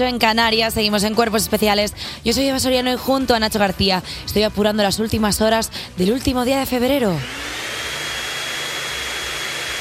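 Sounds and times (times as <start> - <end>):
speech: 0.0 - 7.6
vacuum cleaner running: 7.2 - 9.7.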